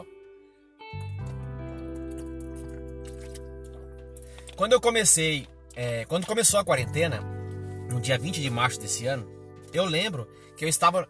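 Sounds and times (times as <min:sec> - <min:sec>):
low gulping rumble: 0:01.1 - 0:10.1
person sipping and swallowing water: 0:01.2 - 0:04.7
speech: 0:04.6 - 0:07.3, 0:07.9 - 0:11.0.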